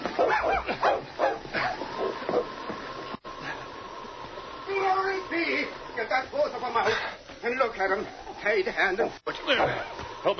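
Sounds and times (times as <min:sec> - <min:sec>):
big dog barking and yipping: 0:00.0 - 0:02.5
mechanical hum: 0:00.0 - 0:10.3
speech: 0:08.6 - 0:10.3.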